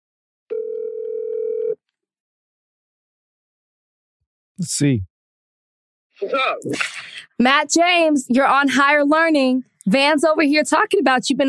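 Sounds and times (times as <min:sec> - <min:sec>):
phone dial tone while placing a call: 0:00.5 - 0:01.8
speech: 0:04.6 - 0:05.1, 0:06.2 - 0:11.4.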